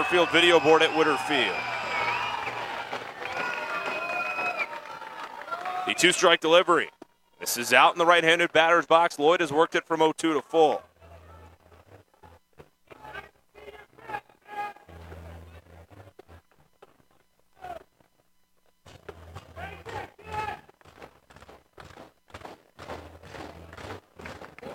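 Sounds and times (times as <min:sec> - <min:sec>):
broadcaster talking: 0:00.0 - 0:01.6, 0:05.8 - 0:10.9
speech: 0:00.0 - 0:01.7, 0:05.9 - 0:10.9
crowd stomping feet in grandstands at a baseball game: 0:00.0 - 0:05.8, 0:18.8 - 0:24.7.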